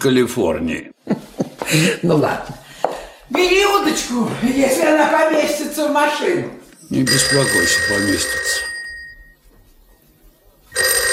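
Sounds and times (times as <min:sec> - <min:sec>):
speech: 0:00.0 - 0:02.6, 0:03.3 - 0:08.7
telephone bell ringing: 0:06.9 - 0:09.4, 0:10.7 - 0:11.1.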